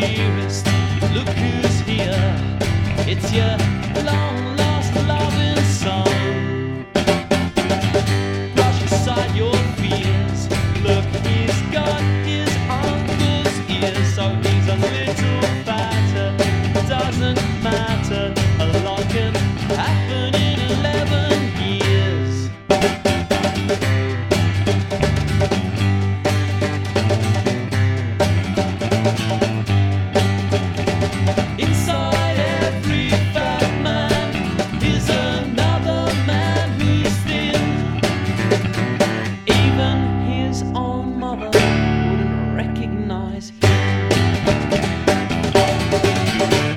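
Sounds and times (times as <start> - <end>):
gentle indie pop song with a full band: 0.0 - 46.7.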